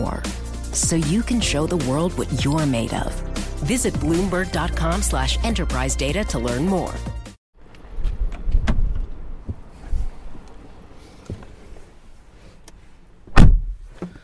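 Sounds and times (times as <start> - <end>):
speech: 0.8 - 7.2
soft rustling movement of someone getting into a car: 7.7 - 14.2
sharp heavy thud: 13.3 - 13.8.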